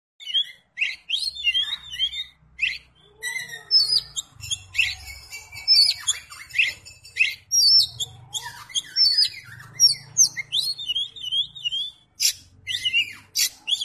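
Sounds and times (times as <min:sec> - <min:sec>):
Oriental magpie-robin song of varied high whistles, chirps and trills: 0:00.2 - 0:13.8.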